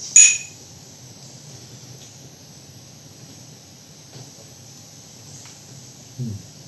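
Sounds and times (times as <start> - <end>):
wine glasses clinking in a toast: 0.2 - 0.5
speech: 6.2 - 6.5.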